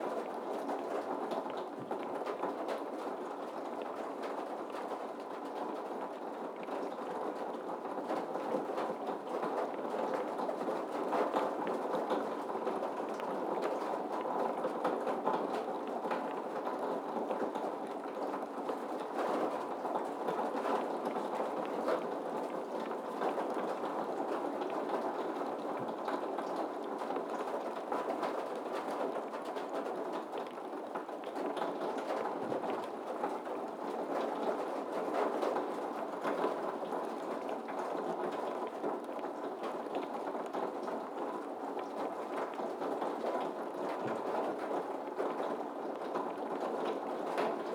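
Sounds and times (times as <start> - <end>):
rain on a metal roof: 0.0 - 47.7.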